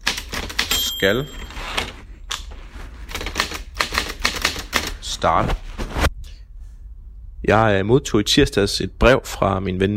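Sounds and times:
mechanical typewriter keys clacking: 0.0 - 1.9, 3.1 - 5.0
speech: 1.0 - 1.8, 5.2 - 5.6, 7.4 - 9.9.

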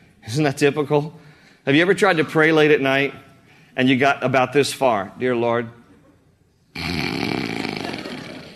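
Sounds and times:
speech: 0.3 - 5.8
person imitating snoring with a rasping voice: 6.8 - 8.5.

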